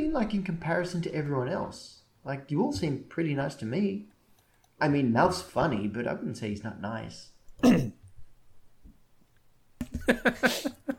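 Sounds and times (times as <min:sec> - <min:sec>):
speech: 0:00.2 - 0:04.1, 0:04.8 - 0:08.0, 0:10.1 - 0:10.8
short forceful deliberate cough: 0:07.6 - 0:08.1
laughter: 0:09.8 - 0:10.9.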